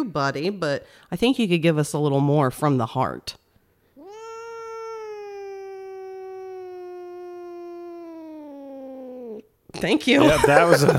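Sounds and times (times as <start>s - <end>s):
speech: 0.0s - 3.4s, 9.8s - 10.9s
cat meowing: 4.0s - 9.5s
laughter: 10.2s - 10.9s.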